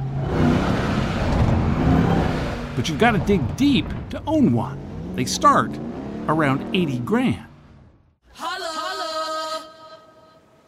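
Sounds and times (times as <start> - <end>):
pickup truck engine revving: 0.2 - 8.0
speech: 2.8 - 7.5.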